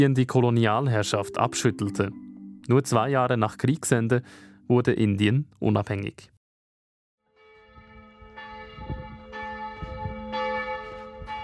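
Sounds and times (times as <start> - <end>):
speech: 0.0 - 6.3
church bells ringing in an overlapping peal: 0.7 - 4.7, 7.3 - 11.4.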